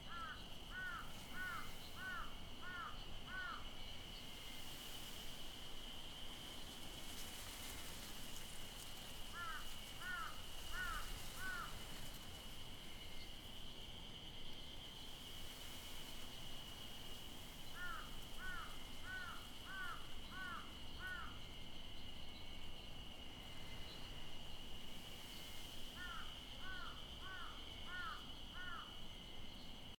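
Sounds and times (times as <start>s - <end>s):
outdoor school ambience in the evening: 0.0s - 29.9s.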